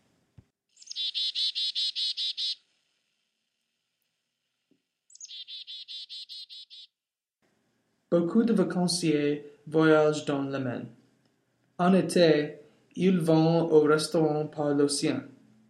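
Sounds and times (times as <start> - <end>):
chickadee call: 0.8 - 2.6, 5.1 - 6.9
speech: 8.2 - 11.0, 11.8 - 15.4.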